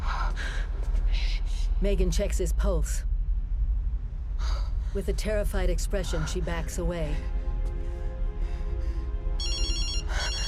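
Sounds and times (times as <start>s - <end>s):
constant loud rumble: 0.0s - 9.4s
speech: 1.8s - 3.1s, 5.0s - 7.4s
mobile phone ringtone warbling melody: 9.4s - 10.4s.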